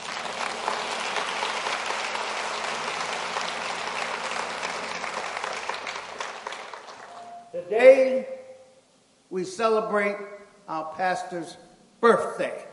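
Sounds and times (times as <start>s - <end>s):
church congregation applauding with hand claps: 0.0s - 7.6s
speech: 7.7s - 8.3s, 9.3s - 12.7s.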